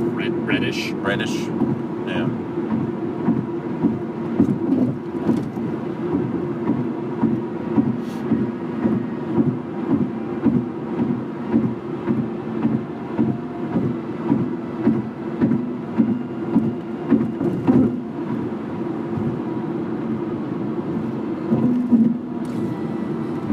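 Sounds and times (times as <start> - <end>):
low road rumble: 0.0 - 23.5
speech: 0.5 - 2.5
car tires thumping over bridge concrete seams: 3.2 - 18.0, 21.5 - 22.4.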